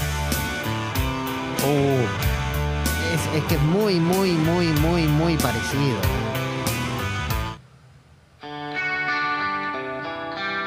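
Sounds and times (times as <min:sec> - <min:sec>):
clean electric guitar with light reverb strumming chords: 0:00.0 - 0:07.6, 0:08.4 - 0:10.6
speech: 0:01.6 - 0:02.2, 0:03.3 - 0:06.4.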